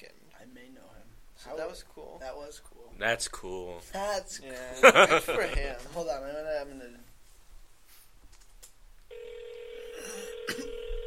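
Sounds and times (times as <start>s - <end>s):
speech: 0.6s - 7.1s
laughter: 4.8s - 5.7s
phone call ringing tone: 9.1s - 11.0s.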